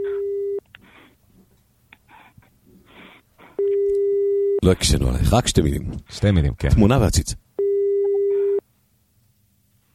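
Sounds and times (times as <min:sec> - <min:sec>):
telephone busy signal after dialing: 0:00.0 - 0:00.6, 0:07.6 - 0:08.6
speech: 0:04.6 - 0:07.4.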